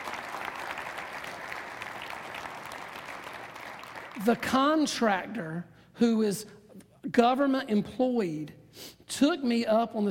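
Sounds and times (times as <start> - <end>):
congregation applauding: 0.0 - 4.4
speech: 4.2 - 10.0.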